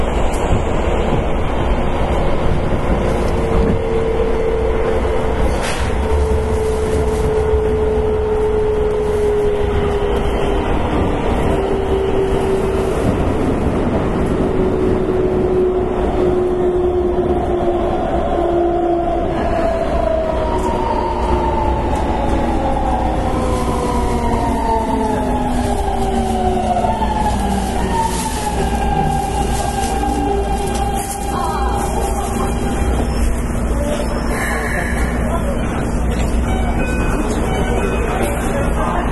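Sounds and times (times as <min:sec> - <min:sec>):
steady rumble of commuter train wheels and track: 0:00.0 - 0:39.1.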